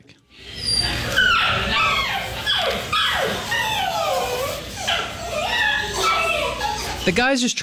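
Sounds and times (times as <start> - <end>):
room noise: 0.0 - 7.6
elderly dog whimpering and yipping: 0.4 - 7.2
speech: 7.1 - 7.6.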